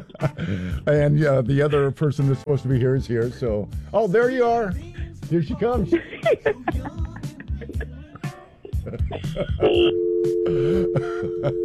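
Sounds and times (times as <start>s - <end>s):
laughter: 0.0s - 0.8s, 5.7s - 9.9s, 10.5s - 11.6s
speech: 0.2s - 7.1s, 8.9s - 11.6s
hotline telephone ringing: 9.6s - 11.6s.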